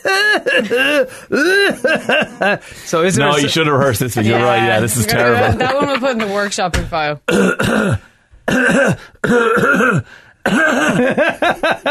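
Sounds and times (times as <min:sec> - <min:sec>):
person coughing and grunting rhythmically to imitate a song: 0:00.0 - 0:02.6, 0:07.3 - 0:11.8
laughter: 0:00.0 - 0:02.7, 0:03.3 - 0:06.4, 0:10.9 - 0:11.8
speech: 0:00.4 - 0:11.8.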